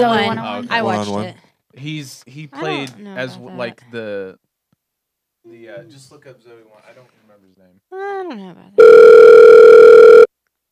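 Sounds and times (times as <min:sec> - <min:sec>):
speech: 0:00.0 - 0:04.4, 0:05.4 - 0:10.3
telephone ringing with electronic tone: 0:08.8 - 0:10.3.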